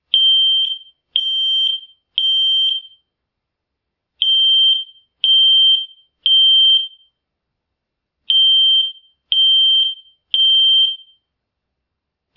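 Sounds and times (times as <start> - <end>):
smoke alarm: 0.1 - 3.1, 4.2 - 7.2, 8.3 - 11.3.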